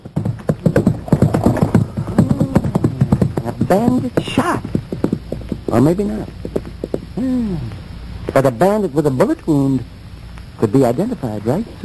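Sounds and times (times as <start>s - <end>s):
horse hooves clip-clopping: 0.0s - 7.2s
speech: 3.7s - 4.7s, 5.7s - 6.4s, 7.2s - 7.8s, 8.4s - 9.9s, 10.6s - 11.8s.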